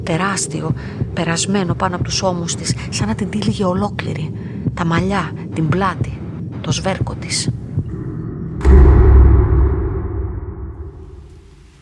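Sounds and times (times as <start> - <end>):
speech: 0.0 - 7.6
thunderclap rolling into a deep rumble: 7.8 - 11.8.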